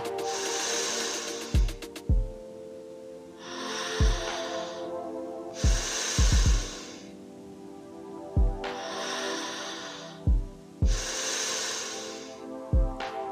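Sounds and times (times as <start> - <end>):
deep forceful breathing in and out: 0.0 - 1.8, 3.4 - 5.0, 5.6 - 7.2, 8.7 - 12.5
soft sustained musical drone: 0.0 - 13.3.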